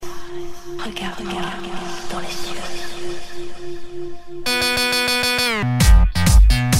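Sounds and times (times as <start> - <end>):
electronica ringtone: 4.4 - 6.7.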